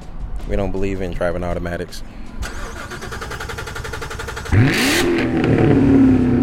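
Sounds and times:
speech: 0.5s - 2.2s
C7 Corvette sports car engine revving in a strip mall parking lot: 3.6s - 6.4s.

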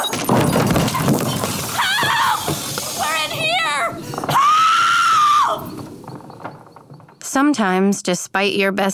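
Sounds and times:
thrown objects crashing and smashing: 0.0s - 7.2s
people screaming: 0.9s - 5.8s
people shouting and yelling: 1.7s - 5.8s
speech: 7.4s - 8.9s.

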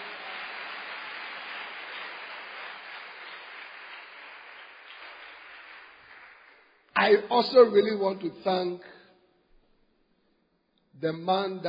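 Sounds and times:
conference audience clapping: 0.0s - 7.6s
speech: 7.0s - 9.0s, 11.0s - 11.6s.

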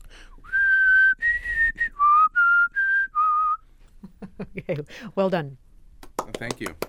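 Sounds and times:
person whistling a theme tune: 0.4s - 3.6s
speech: 4.6s - 5.6s, 6.4s - 6.8s.

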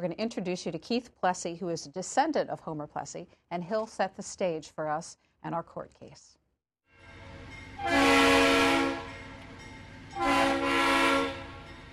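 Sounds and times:
speech: 0.0s - 6.4s, 7.8s - 8.7s, 10.2s - 10.7s
train horn blasts: 6.9s - 9.4s, 10.2s - 11.9s
railroad train passing with faint rail rumble: 6.9s - 11.9s.

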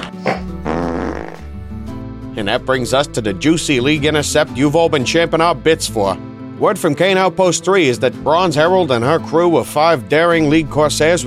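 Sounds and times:
fart sound effect: 0.0s - 1.5s
speech: 2.4s - 11.2s.

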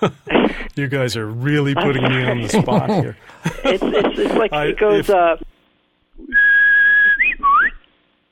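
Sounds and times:
laughter: 0.0s - 0.7s, 1.8s - 5.2s
speech: 0.0s - 5.5s
person whistling an imitation of warbler song: 6.3s - 7.8s.

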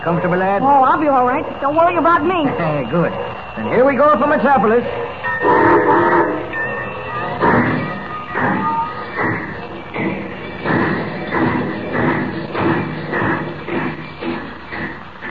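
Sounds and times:
speech: 0.0s - 5.8s
steam train pulling away chuffing: 0.0s - 15.3s
high whistle-like tone of steam train: 0.4s - 11.5s.

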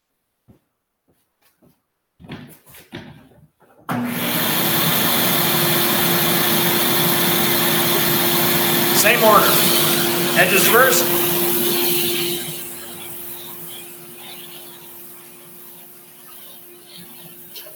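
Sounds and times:
shop vac with extended hose and brush attachment running: 3.9s - 17.7s
speech: 9.0s - 9.7s, 10.4s - 11.2s.

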